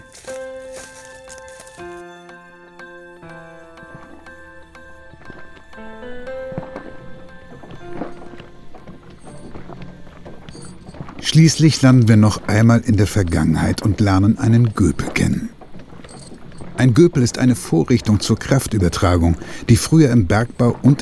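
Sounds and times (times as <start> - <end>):
horse hooves clopping while hauling logs in the forest: 0.0 - 21.0
instrumental music: 0.0 - 21.0
speech: 11.3 - 15.6, 16.8 - 21.0.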